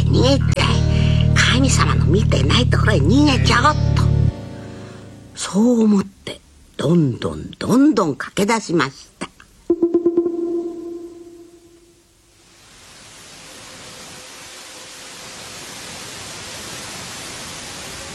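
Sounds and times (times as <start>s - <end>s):
speech: 0.2s - 0.6s, 1.6s - 4.1s, 5.4s - 9.2s
brief pulsing tone: 9.7s - 12.0s.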